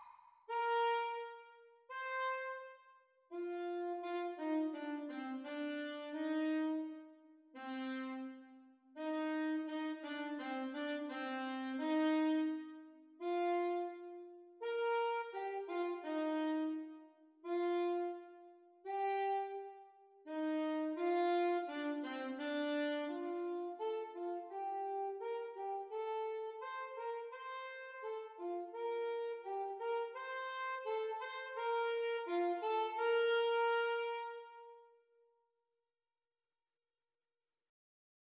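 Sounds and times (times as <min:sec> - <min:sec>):
alto saxophone duet playalong at exam speed: 0:00.5 - 0:35.0.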